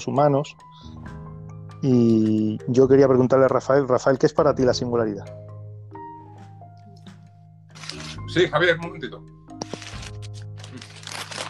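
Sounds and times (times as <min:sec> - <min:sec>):
speech: 0:00.0 - 0:00.7, 0:01.8 - 0:05.4, 0:08.4 - 0:09.3
papers being shuffled and crinkled: 0:07.8 - 0:08.2, 0:09.6 - 0:11.4.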